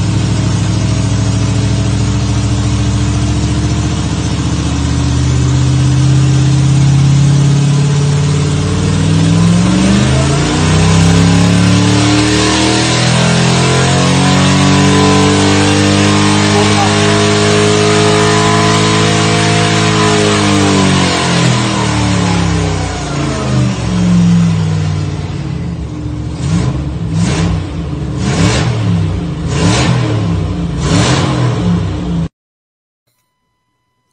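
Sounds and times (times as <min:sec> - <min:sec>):
4-litre V8 championship race car engine revving: 0:00.0 - 0:32.3.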